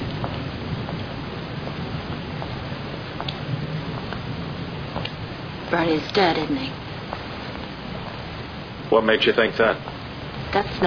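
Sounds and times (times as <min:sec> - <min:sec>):
steady rain falling outdoors: 0:00.0 - 0:10.8
speech: 0:05.7 - 0:06.8, 0:08.9 - 0:09.9, 0:10.5 - 0:10.8.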